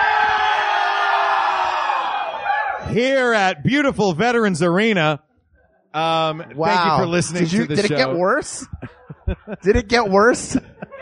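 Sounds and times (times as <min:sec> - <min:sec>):
live theater audience cheering and whooping: 0:00.0 - 0:02.9
speech: 0:02.9 - 0:05.3, 0:05.9 - 0:10.7
laughter: 0:06.0 - 0:11.0.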